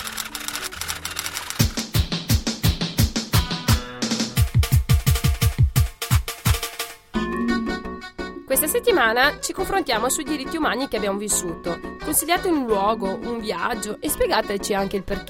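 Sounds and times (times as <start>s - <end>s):
fingers typing on a keyboard: 0.0s - 1.9s
punchy musical backing with deep thumping beats: 1.6s - 7.7s
speech: 8.5s - 15.2s.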